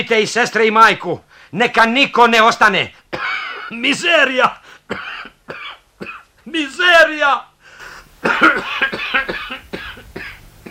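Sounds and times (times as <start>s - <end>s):
speech: 0.0s - 7.5s, 8.2s - 9.2s
person coughing and choking: 3.1s - 3.8s, 4.9s - 6.3s, 8.2s - 10.6s.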